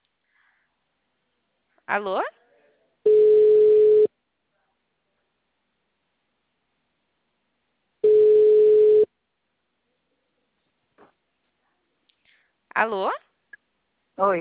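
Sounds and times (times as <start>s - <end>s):
speech: 1.9s - 2.4s, 12.8s - 13.2s, 14.2s - 14.3s
telephone beeps after a dropped call: 3.1s - 4.1s, 8.0s - 9.1s.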